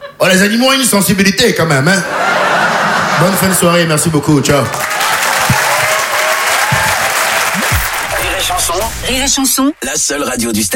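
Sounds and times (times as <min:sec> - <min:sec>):
speech: 0:00.2 - 0:02.5, 0:03.2 - 0:05.0, 0:09.0 - 0:10.7
laughter: 0:01.9 - 0:06.0
audience applause at a stand-up comedy show in Paris: 0:04.6 - 0:09.1.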